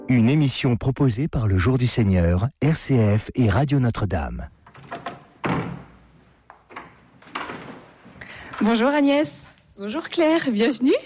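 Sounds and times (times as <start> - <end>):
speech: 0.1 - 4.6, 8.6 - 11.0
door banging shut as visitors enter magazine offices: 4.6 - 7.9
door latch knocks and clatters: 4.6 - 7.9.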